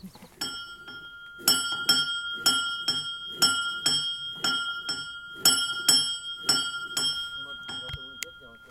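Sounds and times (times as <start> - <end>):
small metallic bell ringing: 0.4 - 8.6.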